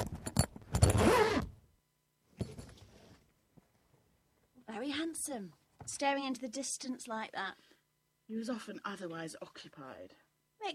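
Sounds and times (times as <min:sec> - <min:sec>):
bag zipper pulled: 0:00.7 - 0:01.6
speech: 0:05.1 - 0:07.7, 0:08.3 - 0:10.7.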